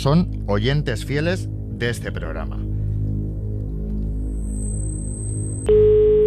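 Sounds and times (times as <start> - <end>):
speech: 0.0 - 2.6
high faint telephone line whine: 0.0 - 6.2
low telephone line hum: 0.0 - 6.2
loud steady electronic telephone beep after dialing: 2.6 - 6.2.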